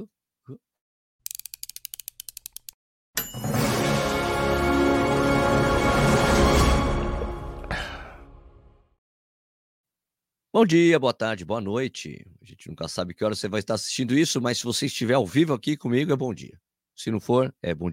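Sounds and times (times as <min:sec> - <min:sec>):
speech: 0:00.0 - 0:00.6, 0:10.6 - 0:17.9
rapid run of ratchet-like clicks: 0:01.2 - 0:02.8
running-shoe review show intro jingle: 0:03.2 - 0:07.6.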